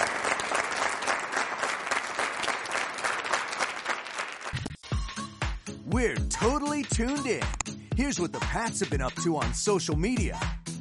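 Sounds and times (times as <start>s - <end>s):
audience applause: 0.0s - 4.6s
speech: 5.9s - 10.6s.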